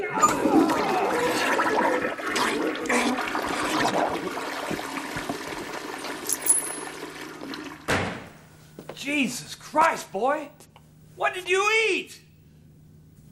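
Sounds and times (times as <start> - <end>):
toilet flushing: 0.0 - 8.0
sharp clunk: 7.9 - 8.3
speech: 9.3 - 10.6, 11.2 - 12.2.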